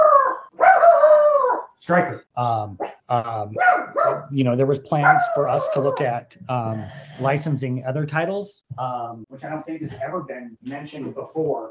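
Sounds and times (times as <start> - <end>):
dog in an office howling and yelping: 0.0 - 1.7, 3.6 - 4.3, 5.0 - 6.2
speech: 1.9 - 11.7.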